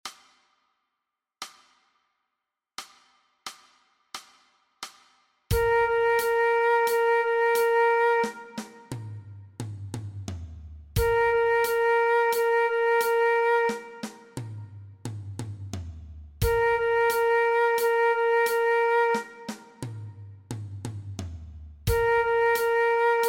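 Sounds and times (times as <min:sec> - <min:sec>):
transverse flute play-along track: 0:05.5 - 0:09.3, 0:11.0 - 0:14.8, 0:16.4 - 0:20.2, 0:21.9 - 0:23.2.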